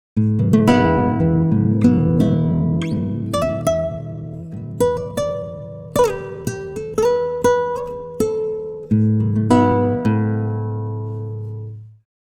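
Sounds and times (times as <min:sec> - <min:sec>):
time-stretched guitar: 0:00.2 - 0:12.0.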